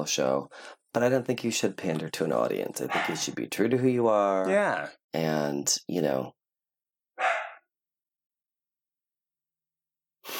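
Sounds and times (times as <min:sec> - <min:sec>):
speech: 0:00.0 - 0:06.4
dog barking in a studio: 0:02.9 - 0:03.2, 0:07.2 - 0:07.7.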